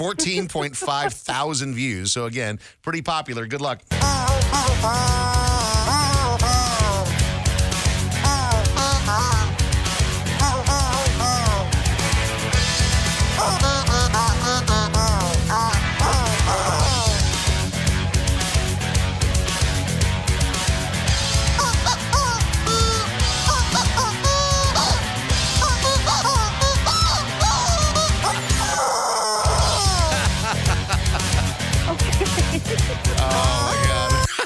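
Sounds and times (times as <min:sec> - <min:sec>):
full steady backing track: 0:00.0 - 0:01.3, 0:03.9 - 0:34.4
laughter: 0:00.0 - 0:01.6, 0:25.6 - 0:34.4
speech: 0:00.0 - 0:06.6
song cover squeezed out of a squeaking rubber chicken toy: 0:04.0 - 0:07.2, 0:08.2 - 0:09.6, 0:10.3 - 0:11.8, 0:13.3 - 0:17.3, 0:21.5 - 0:30.2, 0:33.6 - 0:34.3.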